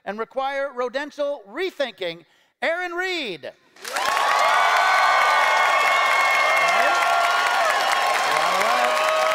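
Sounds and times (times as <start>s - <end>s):
speech: 0.1s - 4.0s
large audience applause: 3.8s - 9.3s.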